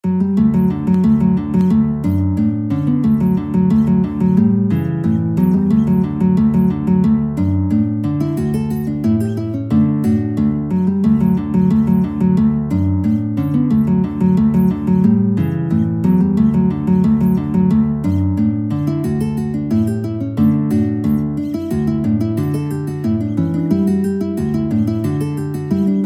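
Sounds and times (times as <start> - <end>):
guitar playing a folk tune: 0.0 - 26.0.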